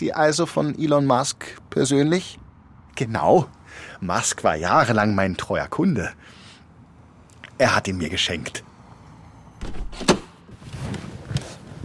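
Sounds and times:
speech: 0.0 - 2.4, 3.0 - 6.4, 7.6 - 8.7, 9.6 - 10.1
solid door thunk of a black Tesla Model S sports car: 9.6 - 10.3
rustling movement of someone climbing into a car: 10.3 - 11.8.

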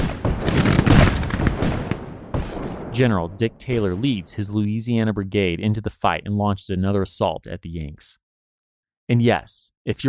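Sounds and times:
heavy gunfire in a Civil War battle: 0.0 - 3.1
speech: 3.0 - 8.2, 9.1 - 10.0.

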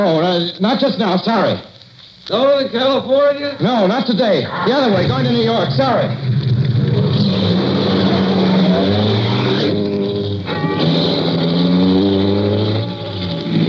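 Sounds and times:
speech: 0.0 - 6.3
road rumble: 1.4 - 13.6
car engine droning through gear shifts: 4.4 - 13.6.

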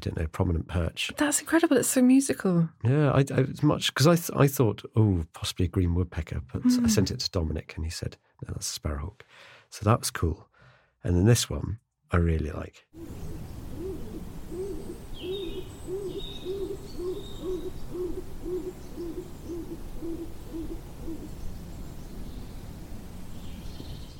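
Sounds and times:
speech: 0.0 - 13.6
stock dove cooing by the River Isle on the Somerset Levels in early spring: 13.0 - 21.4
faint high chirps of other birds: 13.0 - 22.6
steady background hiss: 13.0 - 24.1.

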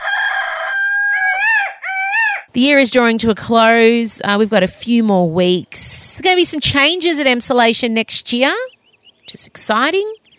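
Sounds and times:
rooster crowing: 0.0 - 2.5
speech: 2.6 - 8.7, 9.3 - 10.2.

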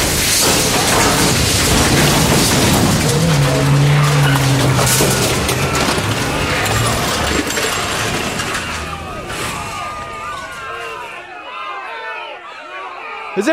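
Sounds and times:
crunching impacts: 0.0 - 11.2
scraping: 0.0 - 11.2
debris clattering: 0.0 - 11.3
out-of-control bus roaring, skidding and crashing: 0.0 - 11.3.

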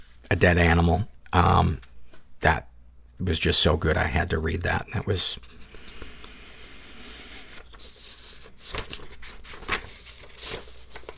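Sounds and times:
speech: 0.3 - 5.6
papers shuffling and rustling: 7.5 - 11.1.

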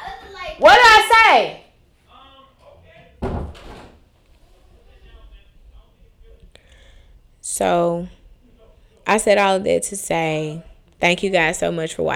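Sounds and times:
voices talking: 0.0 - 12.1
speech: 0.6 - 1.6, 7.6 - 8.2, 9.1 - 12.1
door shutting with a loud thud: 3.2 - 4.0.

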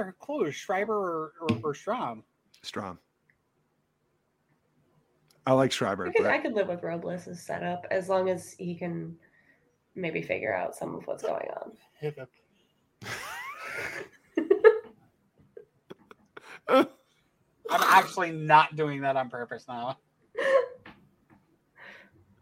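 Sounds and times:
speech: 0.0 - 3.1, 5.5 - 9.3, 10.0 - 12.4, 16.7 - 17.0, 17.7 - 20.8
person hiccuping: 15.9 - 16.9, 17.7 - 18.1
breathy vocal noises: 15.9 - 17.0.

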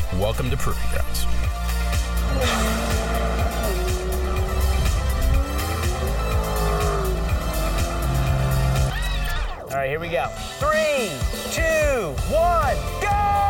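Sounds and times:
speech: 0.1 - 1.7, 9.7 - 13.4
Toyota Prius engine roaring while accelerating hard: 2.1 - 9.6
Toyota Prius tires squealing: 2.4 - 9.6.

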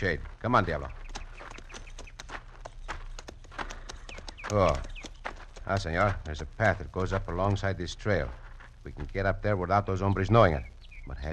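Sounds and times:
speech: 0.0 - 1.0, 4.5 - 4.9, 5.6 - 11.3
hooves clip-clopping as horses are led at a walk: 0.0 - 11.3
steady outdoor hum: 0.0 - 11.3.

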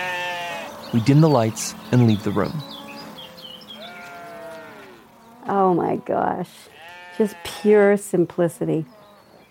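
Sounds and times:
cow mooing: 0.0 - 0.8, 2.3 - 7.6
faint outdoor noise: 0.0 - 9.4
bird chirps: 0.4 - 6.0
speech: 0.9 - 2.7, 5.8 - 9.0.

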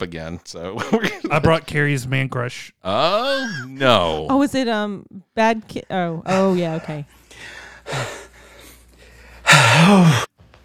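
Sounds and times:
speech: 0.0 - 8.2, 9.8 - 10.3
person panting heavily, out of breath: 6.3 - 10.3.

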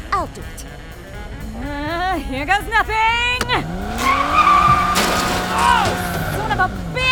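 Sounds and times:
speech: 0.2 - 1.0, 1.6 - 4.4, 5.2 - 7.1
car engine revving: 2.9 - 7.1
car tires skidding and squealing through a handbrake slide: 3.4 - 7.1.

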